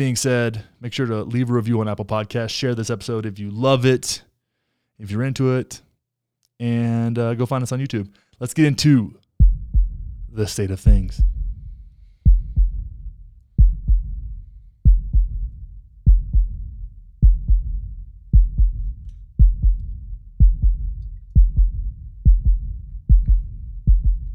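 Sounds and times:
speech: 0.0s - 4.3s, 5.0s - 5.9s, 6.6s - 9.2s, 10.3s - 11.4s
deep heartbeat sound effect used as intro music: 9.4s - 24.3s.

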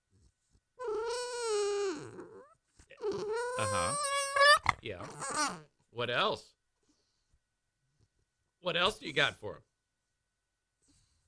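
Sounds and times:
female dog making warbling talking vocalizations: 0.8s - 5.7s
speech: 4.8s - 6.5s, 8.6s - 9.7s.

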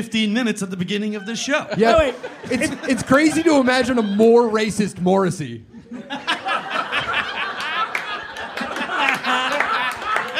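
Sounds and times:
speech: 0.0s - 6.3s
live audience laughing: 1.0s - 5.0s, 5.7s - 10.3s
cheering: 6.4s - 10.3s
live audience clapping: 7.0s - 10.3s.

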